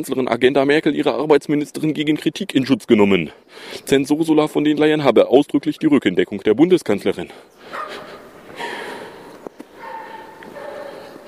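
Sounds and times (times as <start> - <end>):
speech: 0.0 - 8.0
dogs barking outside: 7.6 - 11.2.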